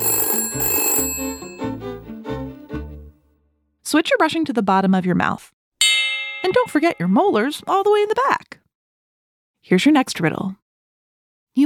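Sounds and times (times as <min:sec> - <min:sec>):
telephone bell ringing: 0:00.0 - 0:02.1
speech: 0:03.9 - 0:05.6, 0:06.4 - 0:08.5, 0:09.6 - 0:10.6.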